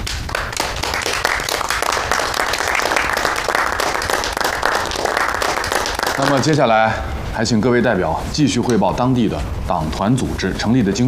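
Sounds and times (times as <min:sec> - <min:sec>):
audience of delegates applauding at a political meeting: 0:00.0 - 0:06.6
speech: 0:06.2 - 0:11.0.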